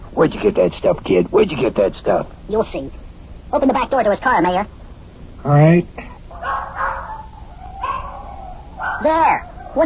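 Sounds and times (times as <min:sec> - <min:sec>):
speech: 0:00.2 - 0:04.8, 0:05.4 - 0:06.1, 0:09.0 - 0:09.8
dogs barking in the back seat of a car: 0:06.3 - 0:09.8.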